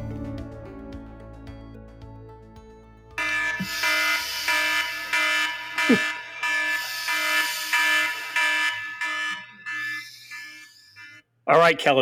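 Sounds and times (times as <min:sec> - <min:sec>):
fire alarm blaring in pulses of harsh buzzing tone: 0:03.2 - 0:11.3
speech: 0:05.9 - 0:06.2, 0:11.5 - 0:12.0.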